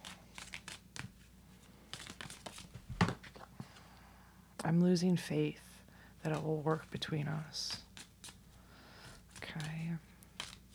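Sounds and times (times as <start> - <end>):
deck of shadow cards rustling and tapping: 0.0 - 3.8, 6.3 - 10.7
speech: 4.7 - 7.9.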